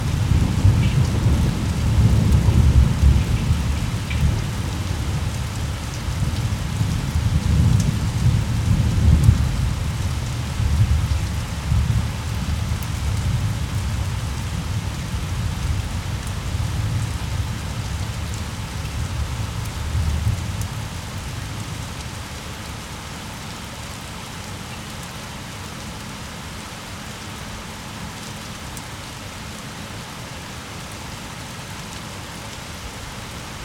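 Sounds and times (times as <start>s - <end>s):
rain: 0.0s - 33.6s.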